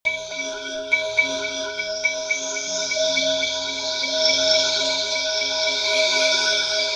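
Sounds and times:
phasing bells layer: 0.1s - 6.8s.

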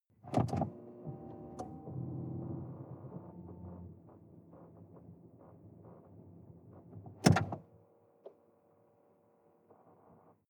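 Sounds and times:
sports car ignition on and off inside the car: 0.2s - 7.7s.

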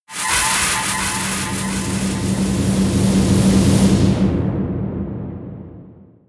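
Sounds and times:
high screaming air vortex: 0.0s - 6.0s.

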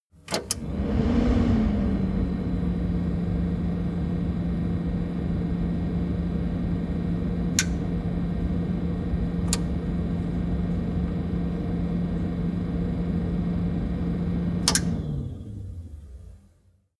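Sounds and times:
stove extractor fan running: 0.3s - 16.4s.

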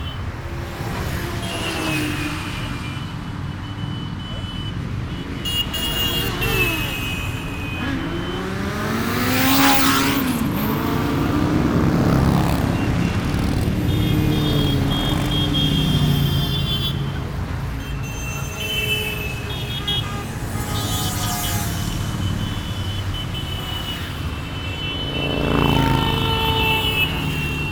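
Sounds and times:
motorcycle on main road: 0.2s - 18.8s, 19.3s - 27.6s.

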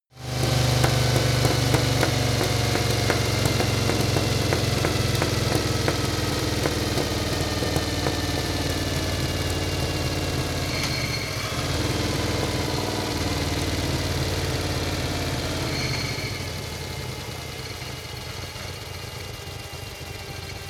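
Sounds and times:
Harley motorcycle rattle: 0.2s - 12.3s
Harley motorcycle engine decelerating: 0.2s - 20.6s.

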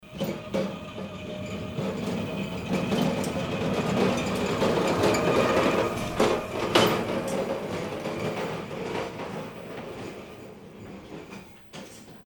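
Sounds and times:
forklift truck passing: 0.1s - 9.9s.

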